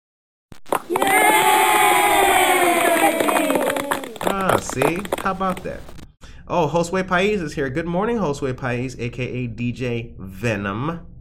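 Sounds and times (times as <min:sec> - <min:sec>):
live audience clapping: 0:00.7 - 0:06.0
many voices of a live audience whooping and yelling: 0:00.8 - 0:05.1
speech: 0:04.8 - 0:11.1.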